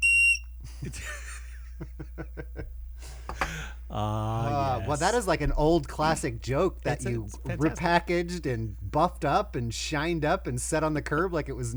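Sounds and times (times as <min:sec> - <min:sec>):
dry water bird whistle blast: 0:00.0 - 0:00.6
people chuckling and laughing: 0:00.6 - 0:09.0
speech: 0:00.8 - 0:02.3, 0:04.9 - 0:11.7.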